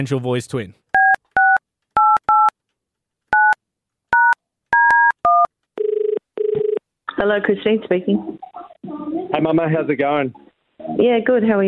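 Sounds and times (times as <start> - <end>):
speech: 0.0 - 0.9, 7.2 - 11.6
telephone keypad tones as a number is dialled: 1.0 - 2.5, 4.2 - 6.8.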